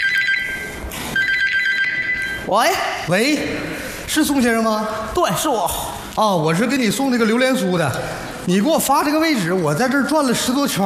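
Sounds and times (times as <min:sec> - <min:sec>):
telephone ringing with an incoming call: 0:00.0 - 0:02.5
speech: 0:02.5 - 0:10.8.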